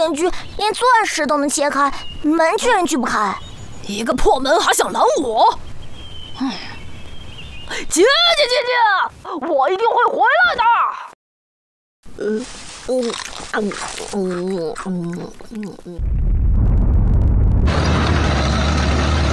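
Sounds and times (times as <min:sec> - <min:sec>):
speech: 0:00.0 - 0:05.7, 0:06.4 - 0:06.7, 0:07.7 - 0:11.0, 0:12.1 - 0:16.2
cannon blast from a television: 0:16.0 - 0:19.2.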